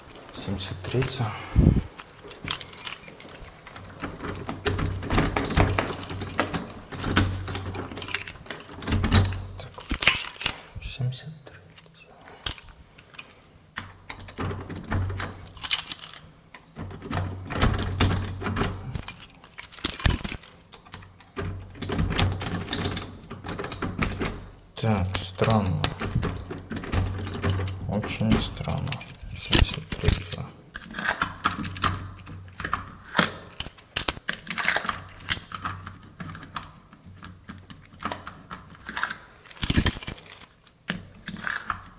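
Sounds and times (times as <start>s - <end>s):
keys jangling: 0.0s - 10.8s, 11.7s - 13.3s, 14.1s - 16.3s, 17.5s - 24.4s, 25.0s - 41.8s
speech: 0.4s - 1.9s.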